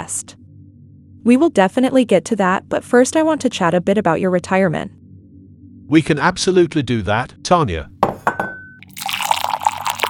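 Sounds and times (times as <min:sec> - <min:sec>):
speech: 0:00.0 - 0:00.4, 0:01.2 - 0:05.0, 0:05.9 - 0:07.9
glass clinking: 0:08.0 - 0:10.0
drink being poured into a glass: 0:08.8 - 0:10.0.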